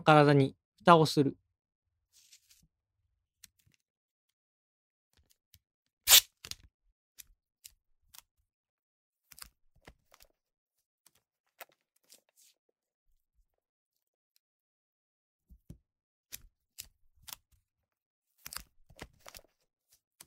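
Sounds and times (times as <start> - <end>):
speech: 0.0 - 1.4
adhesive tape being torn: 6.1 - 6.3.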